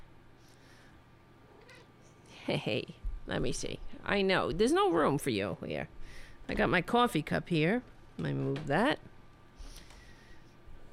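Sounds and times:
cat meowing: 1.5s - 1.9s
speech: 2.4s - 9.1s.

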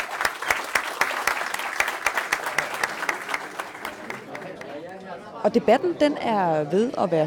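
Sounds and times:
audience applauding a debate panel: 0.0s - 5.0s
speech: 5.4s - 7.2s.

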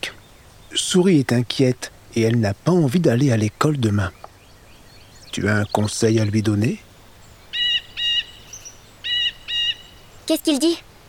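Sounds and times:
speech: 0.7s - 4.2s, 5.3s - 6.8s, 10.3s - 10.9s
harsh buzzy blue jay calls: 4.0s - 10.9s.

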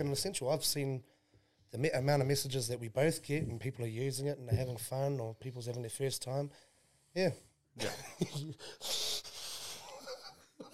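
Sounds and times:
speech: 0.0s - 1.1s, 1.7s - 9.3s
heavy wheezy breathing: 8.6s - 10.0s.

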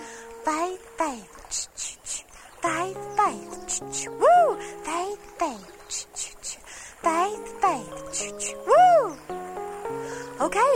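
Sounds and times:
speech: 0.5s - 9.4s, 10.4s - 10.7s
voices singing a song about a little train: 2.0s - 9.3s.

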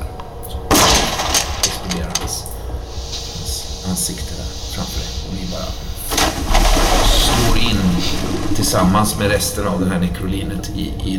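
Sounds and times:
low hum: 0.0s - 11.1s
gunshot: 0.7s - 1.6s
speech: 4.0s - 5.9s, 8.7s - 11.1s.

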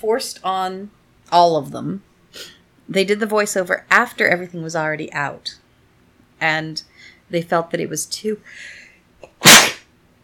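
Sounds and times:
speech: 0.0s - 5.6s, 6.4s - 8.8s
person sneezing into microphone: 9.2s - 9.9s.

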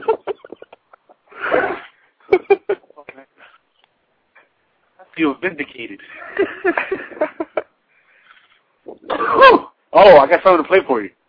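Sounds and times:
speech: 5.2s - 7.4s, 10.0s - 11.2s
harsh rapid coughing from someone taking a hit: 9.0s - 9.7s.

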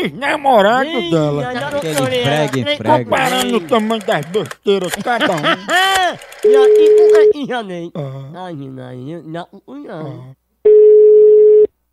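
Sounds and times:
speech: 0.0s - 10.8s
laughter: 0.8s - 7.3s
ringback tone of an outgoing telephone call: 6.4s - 7.3s, 10.7s - 11.7s.

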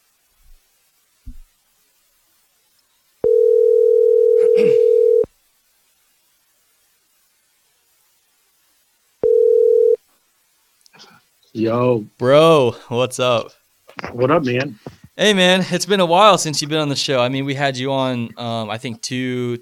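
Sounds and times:
telephone dial tone while calling: 3.2s - 5.3s, 9.2s - 10.0s
speech: 11.6s - 19.6s.

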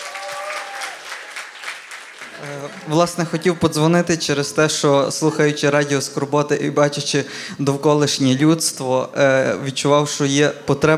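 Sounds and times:
audience applause at a live season-finale show: 0.0s - 3.7s
speech: 2.4s - 10.9s.

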